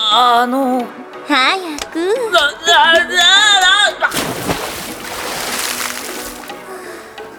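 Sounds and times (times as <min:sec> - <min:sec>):
speech: 0:00.1 - 0:03.4
hot bath water sloshing as someone climbs into a tub at a public spa bathhouse: 0:04.1 - 0:07.3.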